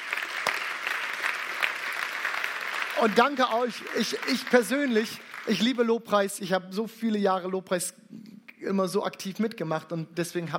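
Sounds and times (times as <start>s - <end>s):
room full of people applauding: 0.0s - 5.9s
speech: 3.0s - 10.5s.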